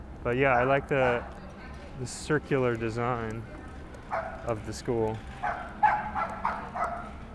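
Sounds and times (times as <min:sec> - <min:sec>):
speech: 0:00.2 - 0:01.4, 0:02.0 - 0:05.7
small dog yapping: 0:05.4 - 0:07.1.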